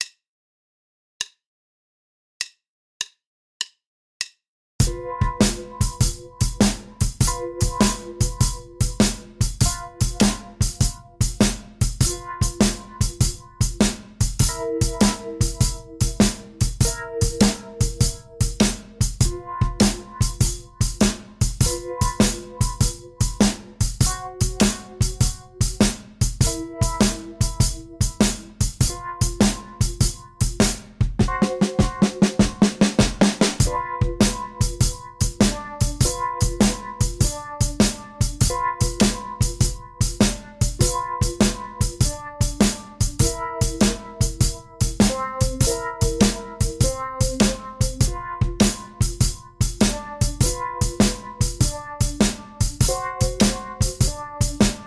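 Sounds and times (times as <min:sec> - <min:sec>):
12 bar blues in G without bass: 0:04.8 - 0:54.8.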